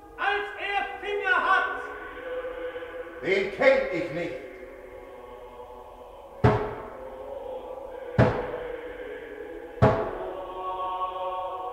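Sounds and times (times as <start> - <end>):
faint steady tones: 0.0 - 11.7
speech: 3.2 - 4.5
slow heavy knocks on a door: 8.2 - 8.6, 9.8 - 10.2.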